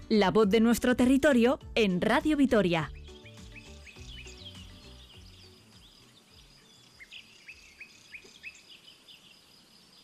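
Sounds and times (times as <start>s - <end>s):
speech: 0.1s - 3.0s
birds chirping and singing in spring: 2.2s - 10.0s.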